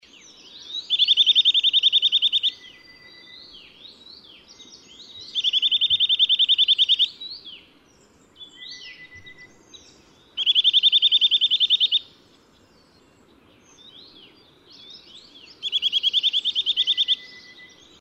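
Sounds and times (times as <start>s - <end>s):
Eurasian nuthatch call: 0.6s - 3.4s, 5.2s - 7.2s, 10.4s - 12.2s, 15.5s - 18.0s.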